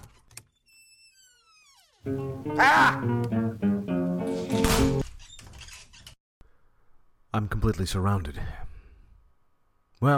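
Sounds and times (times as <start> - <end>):
speech: 2.0 - 3.4, 7.6 - 8.6, 10.0 - 10.1
back door hinge creaking: 4.4 - 6.2.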